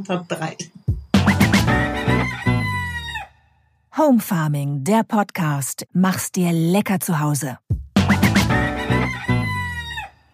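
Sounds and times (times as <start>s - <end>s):
speech: 0.0s - 0.8s, 4.0s - 8.2s
rooster crowing: 1.7s - 3.8s, 8.6s - 10.3s.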